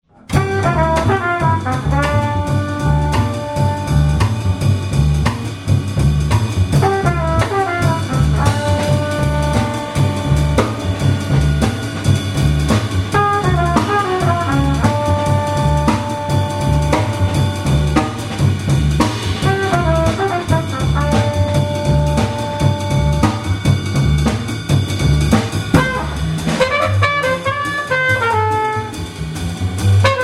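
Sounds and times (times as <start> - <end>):
acoustic trio playing: 0.3 - 30.2.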